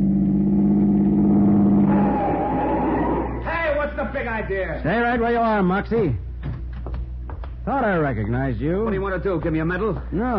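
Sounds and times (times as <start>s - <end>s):
car engine accelerating as the car pulls out to cut in ahead of another car: 0.0s - 3.4s
speech: 4.4s - 6.3s, 7.7s - 10.3s.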